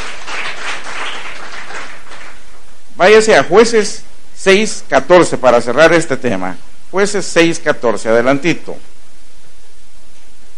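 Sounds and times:
crowd applause with dense overlapping clapping: 0.0s - 2.5s
speech: 3.0s - 8.9s.

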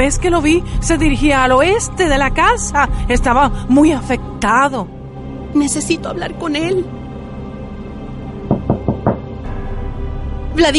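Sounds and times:
speech: 0.0s - 7.0s, 10.6s - 10.7s
firm knocking on a door: 8.5s - 9.4s.

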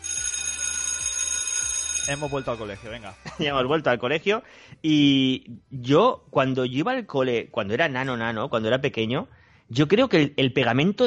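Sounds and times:
school bell ringing: 0.0s - 3.0s
speech: 2.1s - 11.0s
laughter: 3.2s - 3.7s.

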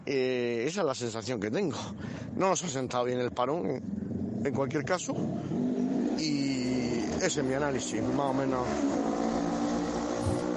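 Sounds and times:
speech: 0.0s - 6.5s, 7.2s - 9.2s
motorcycle passing by: 3.9s - 10.5s.

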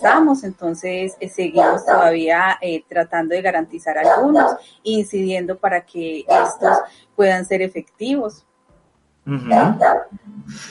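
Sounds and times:
speech: 0.0s - 8.5s, 9.3s - 10.6s
dog barking: 1.6s - 2.1s, 4.0s - 4.6s, 6.3s - 6.9s, 9.5s - 10.1s
low voice murmuring: 9.3s - 10.6s.

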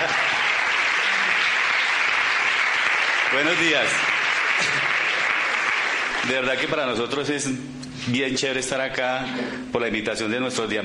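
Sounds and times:
crowd applauding: 0.0s - 7.0s
speech: 3.3s - 5.0s, 6.2s - 10.8s.

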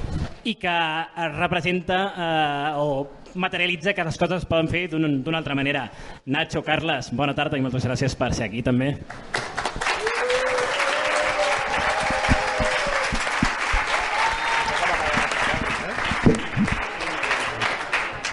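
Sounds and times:
speech: 0.4s - 9.4s
audience applause: 9.3s - 18.3s
faint voices and cheers: 10.0s - 17.6s.

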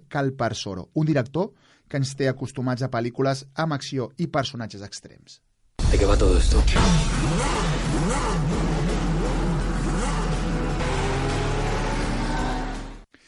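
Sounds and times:
speech: 0.1s - 9.0s
powerful racing car engine revving hard: 6.8s - 13.1s.

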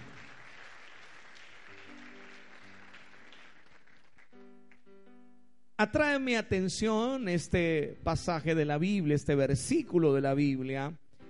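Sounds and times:
crowd clapping: 0.0s - 4.9s
speech: 5.8s - 11.0s.

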